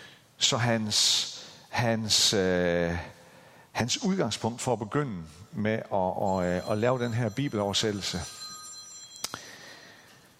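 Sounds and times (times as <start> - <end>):
speech: 0.4 - 3.2, 3.8 - 8.4
telephone ringing with electronic tone: 6.3 - 9.6.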